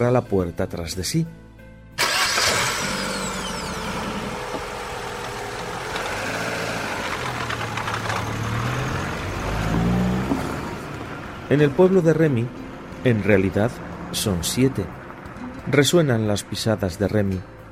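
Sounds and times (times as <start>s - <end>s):
speech: 0.0s - 1.4s, 11.5s - 15.0s, 15.6s - 17.6s
car engine starting and idling outside the front door of a house: 2.0s - 15.5s.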